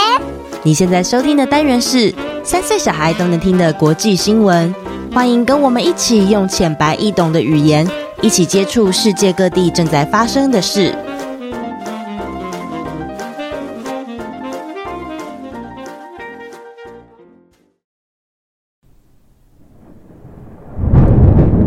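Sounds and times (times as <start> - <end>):
melodic music: 0.0 - 17.2
speech: 0.6 - 11.1
spring thunder rumbling: 19.4 - 21.6.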